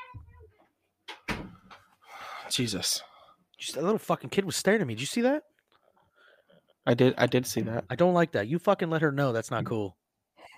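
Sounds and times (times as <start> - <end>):
door shutting with a solid thud and rattling tail: 1.1 - 1.8
speech: 2.5 - 5.5, 6.9 - 10.0.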